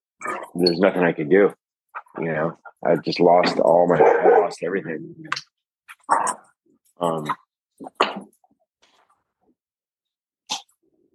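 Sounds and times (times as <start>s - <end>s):
speech: 0.6s - 1.6s, 2.2s - 5.5s, 6.1s - 8.3s
dog barking and whimpering: 4.0s - 4.6s.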